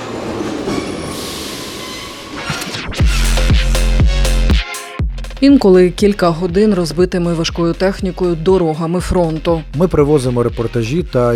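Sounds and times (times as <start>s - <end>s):
metro train screech: 0.0s - 2.9s
metro train at Derzhprom underground station in Kharkiv: 0.0s - 3.8s
speech: 5.4s - 11.3s.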